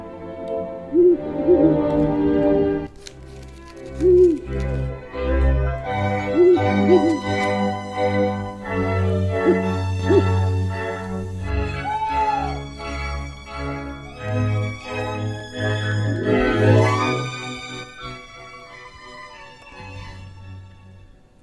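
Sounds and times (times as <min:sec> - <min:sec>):
droning music: 0:00.0 - 0:21.3
flock of owls hooting eerily: 0:00.9 - 0:01.9, 0:04.0 - 0:04.5, 0:06.2 - 0:07.4, 0:09.3 - 0:10.5, 0:15.9 - 0:17.3.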